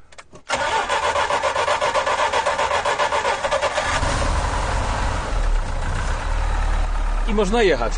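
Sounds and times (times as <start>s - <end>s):
cold engine of a Żuk cranking and starting: 0.5s - 6.3s
Żuk engine in a loud rough idle: 1.5s - 7.9s
speech: 7.4s - 7.9s.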